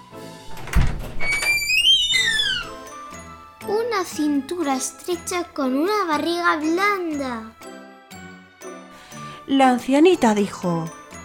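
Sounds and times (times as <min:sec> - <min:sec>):
door creaking open: 0:00.5 - 0:03.0
speech: 0:04.0 - 0:07.6, 0:09.5 - 0:11.0.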